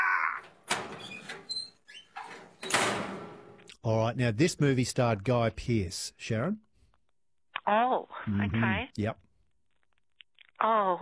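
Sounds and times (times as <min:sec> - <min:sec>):
heavy metal door grinding and squealing on its track: 0:00.5 - 0:03.6
speech: 0:03.8 - 0:06.6, 0:07.7 - 0:09.2, 0:10.6 - 0:11.0.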